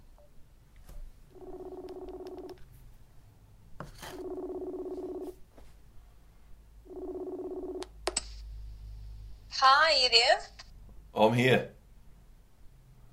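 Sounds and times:
electronic ringing tones of a phone call being placed: 0:01.3 - 0:02.7, 0:04.0 - 0:05.4, 0:06.8 - 0:08.0
speech: 0:09.6 - 0:10.6, 0:11.2 - 0:11.7.

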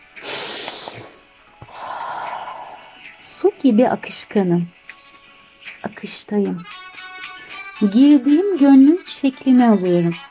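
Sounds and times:
slow breath drawn in through the nose: 0:00.1 - 0:03.1
long airy exhale out through the mouth: 0:00.2 - 0:03.1
speech: 0:03.6 - 0:04.8, 0:06.0 - 0:06.9, 0:07.8 - 0:10.2.

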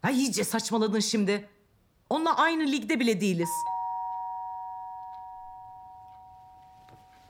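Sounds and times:
speech: 0:00.0 - 0:03.7
electronic doorbell chime: 0:03.5 - 0:07.2.

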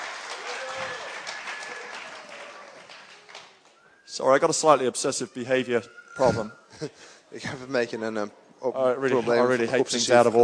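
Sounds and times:
audience applauding volunteers: 0:00.0 - 0:03.8
faint voices and cheers: 0:00.0 - 0:06.6
speech: 0:04.2 - 0:10.4.

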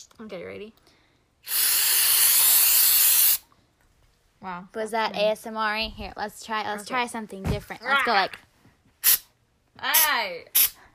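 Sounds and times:
speech: 0:00.0 - 0:01.7, 0:04.4 - 0:08.5, 0:09.8 - 0:10.6
small bottle of marijuana mouth spray hissing: 0:01.4 - 0:03.4, 0:09.0 - 0:09.3, 0:10.0 - 0:10.9.

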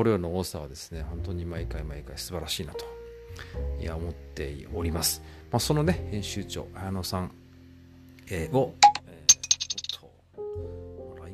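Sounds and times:
speech: 0:00.0 - 0:07.4, 0:08.3 - 0:08.9
app notification sound on a phone: 0:08.8 - 0:09.9.

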